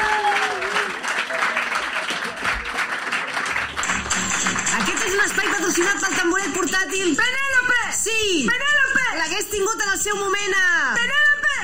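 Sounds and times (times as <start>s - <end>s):
scattered cheers: 0.0s - 3.9s
crowd applauding: 0.0s - 7.2s
speech: 5.7s - 11.2s.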